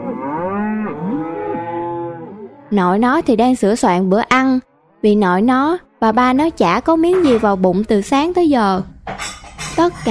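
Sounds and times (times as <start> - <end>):
cows mooing loudly: 0.0 - 3.0, 4.6 - 6.6
speech: 2.7 - 10.0.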